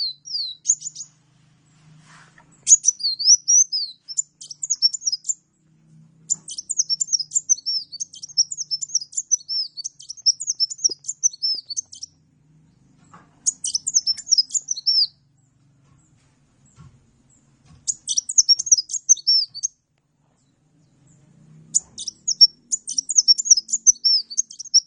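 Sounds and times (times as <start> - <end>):
Oriental magpie-robin singing lively: 0.0 - 1.2, 2.6 - 5.5, 6.2 - 12.2, 13.4 - 15.2, 17.8 - 19.8, 21.7 - 24.8
faint low hum: 0.0 - 24.7.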